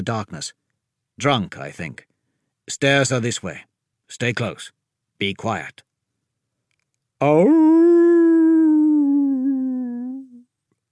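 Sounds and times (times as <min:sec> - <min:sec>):
speech: 0:00.0 - 0:00.6, 0:01.2 - 0:02.1, 0:02.7 - 0:05.9, 0:07.2 - 0:08.0
wolf howling loudly: 0:07.2 - 0:10.4.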